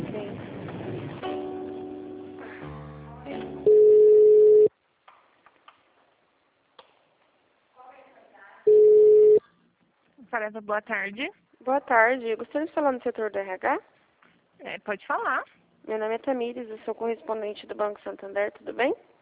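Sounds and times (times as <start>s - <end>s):
telephone line beeps during a call transfer: 3.7s - 4.7s, 8.7s - 9.4s
speech: 10.4s - 13.9s, 14.6s - 19.1s.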